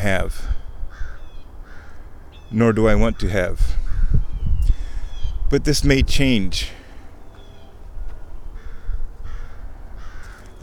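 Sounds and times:
speech: 0.0s - 0.6s, 2.5s - 3.8s, 5.5s - 6.8s
low outdoor rumble: 0.0s - 10.6s
crow cawing: 0.9s - 2.5s, 3.1s - 5.4s, 7.1s - 10.6s.

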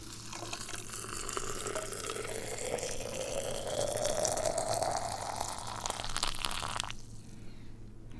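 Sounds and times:
freshly boiled water poured onto tea in a container: 0.0s - 7.2s.

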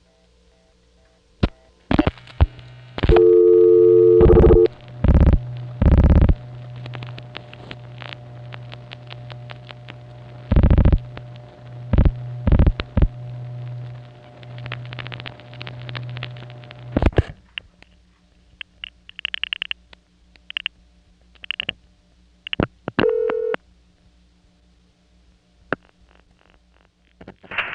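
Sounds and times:
low telephone line hum: 0.0s - 27.1s
supervision handshake tone bursts on a PBX telephone switch: 3.1s - 4.8s, 23.0s - 23.6s
dialing tone blips on a PBX telephone switch: 3.1s - 6.4s, 11.9s - 13.1s, 23.0s - 23.6s.

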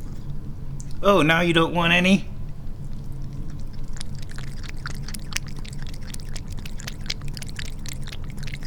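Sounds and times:
low hum: 0.0s - 8.6s
speech: 1.0s - 2.3s
cat lapping water from a cup on the floor: 3.1s - 8.6s.

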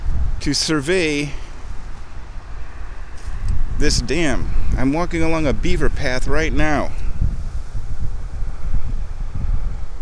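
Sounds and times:
wind blowing outdoors along a beaver path beside a dammed creek: 0.0s - 9.9s
speech: 0.4s - 1.4s, 3.8s - 7.0s.

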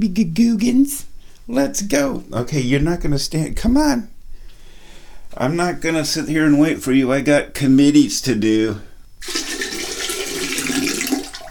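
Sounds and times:
speech: 0.0s - 4.1s, 5.3s - 9.5s
old water pouring out: 9.2s - 11.4s.

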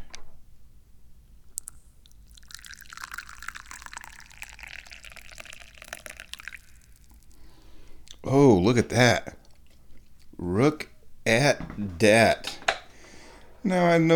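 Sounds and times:
tea pouring into a teacup: 1.6s - 7.5s
speech: 8.3s - 9.4s, 10.4s - 12.6s, 13.6s - 14.1s.

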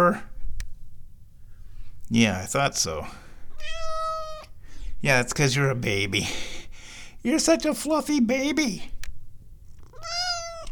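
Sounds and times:
speech: 2.1s - 3.8s, 5.0s - 6.6s, 7.2s - 9.0s
cat meowing: 3.5s - 4.6s, 9.8s - 10.7s.

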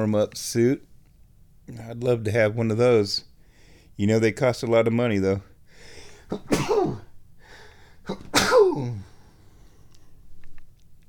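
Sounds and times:
speech: 0.0s - 0.9s, 1.7s - 3.3s, 4.0s - 5.5s, 6.3s - 7.1s, 8.0s - 9.1s
person sneezing: 6.1s - 7.1s, 8.0s - 9.2s.

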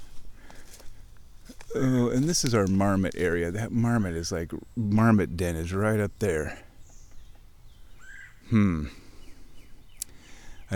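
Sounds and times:
outdoor ambience: 0.0s - 10.7s
speech: 1.7s - 6.6s, 8.5s - 9.0s
red-bellied woodpecker harsh rolling squawk: 7.9s - 8.4s.

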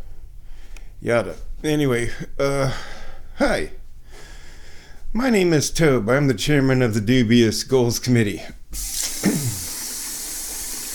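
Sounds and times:
speech: 1.0s - 3.8s, 5.1s - 9.0s
water running from a kitchen sink tap while a teacup is washed: 8.8s - 10.9s.

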